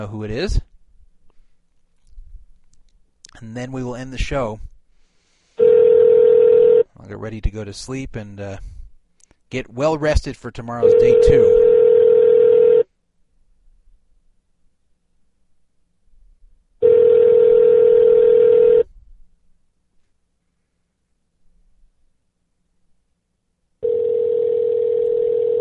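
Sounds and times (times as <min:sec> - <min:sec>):
speech: 0:00.0 - 0:00.7, 0:03.4 - 0:04.7, 0:07.0 - 0:08.8, 0:09.5 - 0:11.7
ringback tone on an outgoing phone call: 0:05.6 - 0:06.9, 0:10.8 - 0:12.9, 0:16.8 - 0:18.9, 0:23.8 - 0:25.5.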